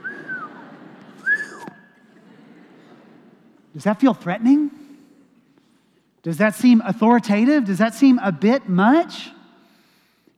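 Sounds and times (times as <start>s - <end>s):
person whistling: 0.0s - 2.0s
laughter: 0.0s - 5.7s
speech: 3.8s - 4.8s, 6.2s - 9.4s.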